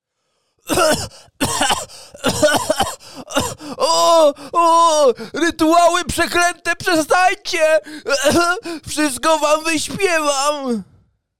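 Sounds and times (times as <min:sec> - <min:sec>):
speech: 0:00.7 - 0:02.7, 0:04.2 - 0:10.9
voice imitating coughing: 0:00.7 - 0:04.8, 0:07.8 - 0:08.9.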